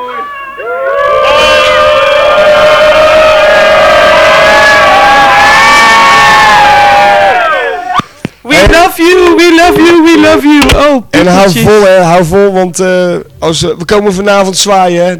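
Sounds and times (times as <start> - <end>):
crowd of voices shouting farewell together: 0.0 - 8.0
speech: 9.7 - 15.1.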